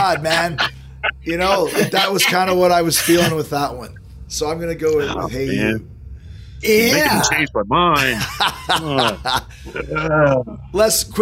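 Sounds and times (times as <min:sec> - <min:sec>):
person imitating a chicken clucking: 0:00.0 - 0:02.6, 0:08.9 - 0:10.6
laughter: 0:00.0 - 0:03.5, 0:08.0 - 0:10.5
speech: 0:00.1 - 0:05.9, 0:06.6 - 0:11.2.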